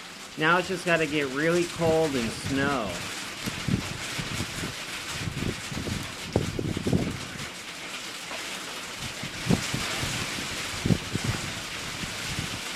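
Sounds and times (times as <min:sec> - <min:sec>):
speech: 0:00.4 - 0:03.1
stormy wind blowing with gusty low rumbles: 0:01.8 - 0:07.5, 0:09.2 - 0:12.6.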